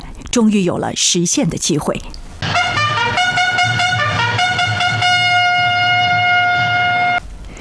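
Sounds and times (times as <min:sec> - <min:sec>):
speech: 0:00.4 - 0:02.2
high-speed train pulling away from Ruijin station: 0:02.2 - 0:07.6
loud military bugle call: 0:02.4 - 0:07.2.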